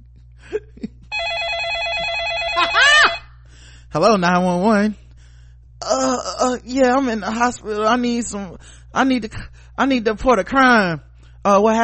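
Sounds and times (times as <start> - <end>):
telephone ringing with electronic warble: 1.1 - 3.3
speech: 3.9 - 5.0, 5.9 - 11.8.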